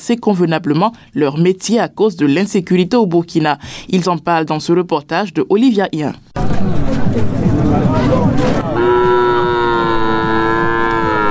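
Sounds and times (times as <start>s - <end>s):
speech: 0.0s - 9.1s
crowd of chattering voices at a livestock market: 6.4s - 9.8s
cow mooing at a livestock market: 8.7s - 11.2s.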